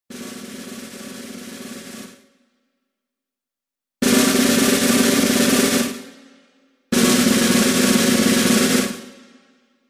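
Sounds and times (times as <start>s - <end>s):
snare drum roll: 0.1s - 2.3s, 4.0s - 6.2s, 6.9s - 9.4s.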